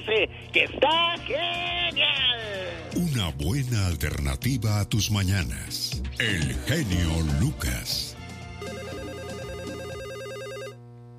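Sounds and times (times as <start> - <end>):
speech: 0.0 - 8.2
telephone ringing for an incoming call to a radio call-in show: 8.6 - 10.8.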